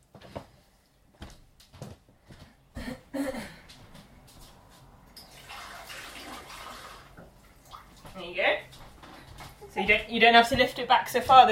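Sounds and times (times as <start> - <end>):
water poured into a cup: 5.2 - 7.9
speech: 9.9 - 11.5.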